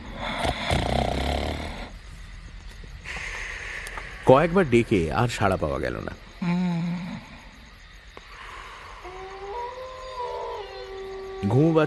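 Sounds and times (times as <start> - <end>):
person snoring: 0.0 - 1.9
person breathing quietly: 3.0 - 4.3, 8.2 - 9.3
speech: 4.3 - 6.3, 11.4 - 11.8.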